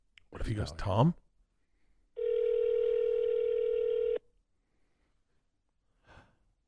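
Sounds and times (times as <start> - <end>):
speech: 0.3 - 1.2
telephone ringback tone on outgoing call: 2.2 - 4.2.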